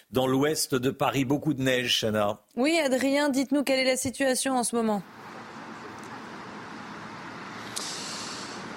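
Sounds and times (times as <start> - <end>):
speech: 0.1 - 5.3
busy urban road traffic: 5.0 - 8.7
sharp hiss: 5.3 - 8.7.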